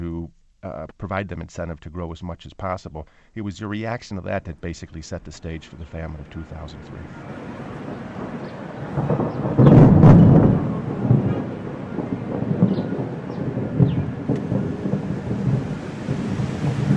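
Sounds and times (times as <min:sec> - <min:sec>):
speech: 0:00.6 - 0:09.6
heavy roll of thunder: 0:04.6 - 0:16.9
steady rain in the highlands: 0:05.3 - 0:16.9.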